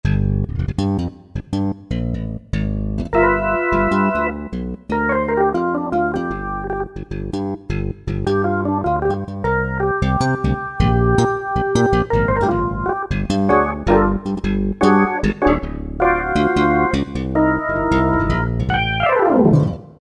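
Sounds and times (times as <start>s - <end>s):
slap bass on synthesizer: 0.0s - 19.8s
organ on synthesizer: 3.2s - 7.0s, 8.4s - 19.8s.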